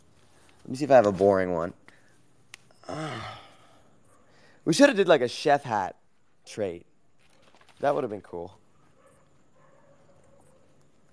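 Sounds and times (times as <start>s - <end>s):
steady hiss: 0.0s - 11.1s
speech: 0.7s - 1.8s, 4.6s - 6.9s, 7.8s - 8.6s
distant dog yips and whimpering cries: 8.7s - 10.8s.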